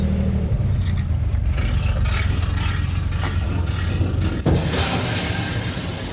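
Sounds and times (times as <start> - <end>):
steady low engine rumble: 0.0 - 4.5
ferry ramp clattering and scraping at the landing: 2.0 - 6.1.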